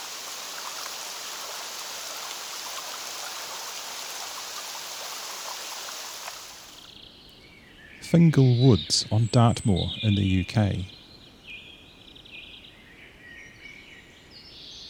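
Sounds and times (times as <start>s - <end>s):
rain pattering onto open water of a Scottish loch: 0.0s - 6.9s
speech: 8.1s - 11.0s.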